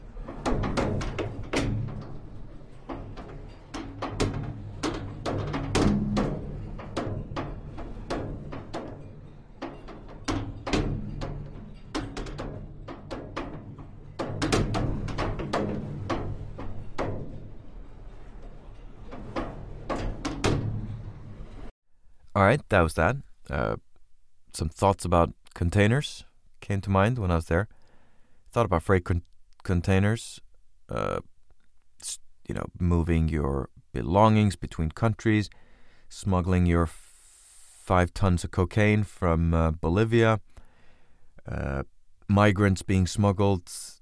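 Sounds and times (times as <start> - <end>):
plastic door banging back and forth: 0.0 - 21.7
speech: 22.4 - 23.9, 24.5 - 27.8, 28.5 - 31.3, 32.0 - 37.0, 37.9 - 40.5, 41.5 - 44.0.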